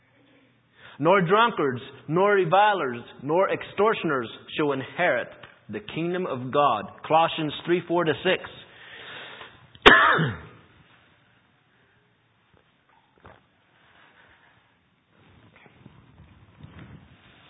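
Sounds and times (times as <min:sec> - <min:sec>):
breathy sounds: 0:00.7 - 0:01.0, 0:08.7 - 0:09.7, 0:13.7 - 0:14.8
speech: 0:01.0 - 0:08.6, 0:10.0 - 0:10.4
rough throat clearing: 0:09.8 - 0:10.6
person coughing: 0:09.8 - 0:10.7
faint rustles: 0:13.2 - 0:17.4.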